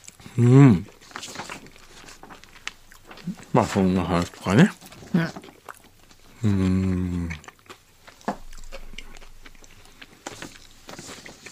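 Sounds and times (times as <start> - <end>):
chewing and biting bread: 0.0 - 11.5
person humming: 0.2 - 0.9, 6.4 - 7.4
speech: 0.4 - 1.0, 3.2 - 5.5, 6.4 - 7.4.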